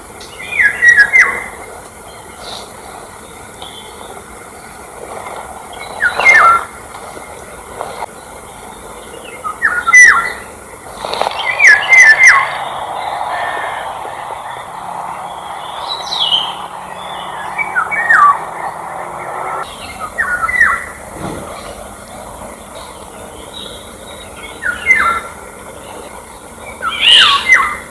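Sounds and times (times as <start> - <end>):
Eurasian golden oriole fluty whistling song: 0.2 - 1.6, 5.7 - 6.7, 9.2 - 21.0, 22.8 - 25.3, 26.7 - 27.9
faint bird calls outdoors: 0.2 - 27.9.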